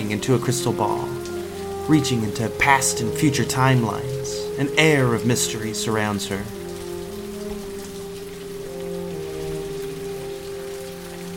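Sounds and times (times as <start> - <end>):
heavy rain drops drumming on surfaces: 0.0 - 11.3
speech: 0.1 - 1.2, 1.9 - 6.6.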